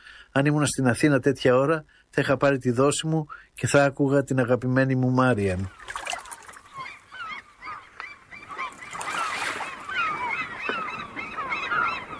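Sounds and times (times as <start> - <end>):
speech: 0.4 - 6.0
harbour ambience: 5.4 - 12.1
crowd of gulls crying at a harbour: 5.6 - 12.1.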